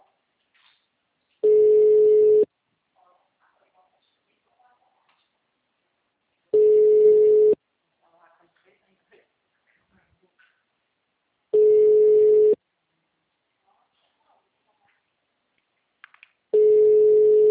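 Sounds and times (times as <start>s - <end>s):
telephone ringback tone on an outgoing call: 1.4s - 2.5s, 6.6s - 7.6s, 11.6s - 12.6s, 16.6s - 17.4s.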